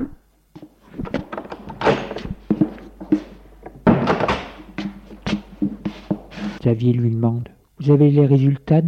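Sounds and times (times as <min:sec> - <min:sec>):
knocks, bumps and rattling handling noises: 0:00.6 - 0:06.6
door pushed shut with a dull thud: 0:01.1 - 0:02.4, 0:03.8 - 0:04.7
speech: 0:06.7 - 0:08.8.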